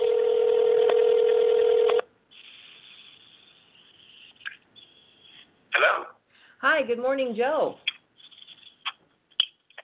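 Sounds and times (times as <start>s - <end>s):
phone line hiss: 0.0s - 2.0s
steady telephone tone: 0.0s - 2.0s
speech: 6.8s - 7.9s.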